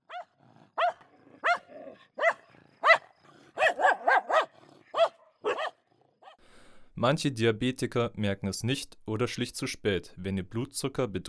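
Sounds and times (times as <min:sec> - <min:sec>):
diabetes alert dog barking: 0:00.0 - 0:06.4
speech: 0:07.0 - 0:11.2.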